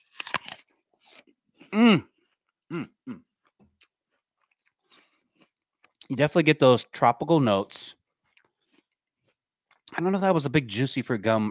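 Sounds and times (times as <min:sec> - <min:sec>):
crunchy bite into an apple: 0:00.0 - 0:01.3
quiet chewing: 0:00.2 - 0:06.1, 0:08.1 - 0:10.0
speech: 0:01.7 - 0:02.1, 0:02.7 - 0:03.3, 0:06.1 - 0:08.0, 0:09.9 - 0:11.4.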